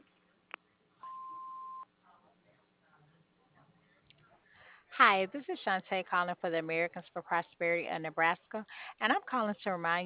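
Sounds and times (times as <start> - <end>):
answering machine beep: 1.0 - 1.8
speech: 5.0 - 10.0.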